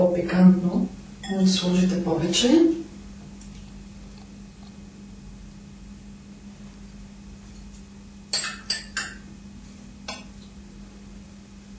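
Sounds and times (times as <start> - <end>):
speech: 0.0 - 2.8
faint steady hum: 0.0 - 11.7
utensil clinking against a bowl while stirring cumin, black pepper and salt: 1.2 - 1.6, 8.3 - 9.2.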